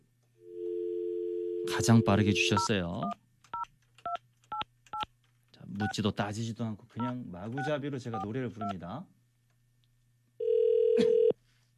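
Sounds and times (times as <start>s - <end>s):
telephone ringback tone as a call is placed: 0.4s - 2.4s, 10.4s - 11.3s
speech: 1.7s - 3.2s, 5.8s - 9.2s.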